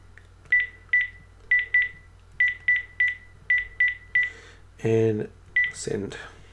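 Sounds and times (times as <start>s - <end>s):
short electronic telephone keypad beeps: 0.5s - 4.3s, 5.6s - 5.8s
speech: 4.8s - 6.4s.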